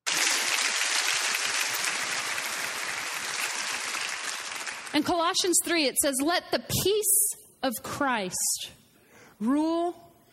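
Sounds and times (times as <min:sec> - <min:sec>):
audience applauding: 0:00.0 - 0:05.0
speech: 0:05.0 - 0:08.8, 0:09.4 - 0:10.0.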